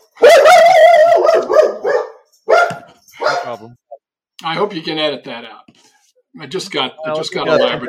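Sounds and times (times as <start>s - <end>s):
dog barking and howling: 0.1s - 3.6s
speech: 3.5s - 3.8s, 4.4s - 7.8s.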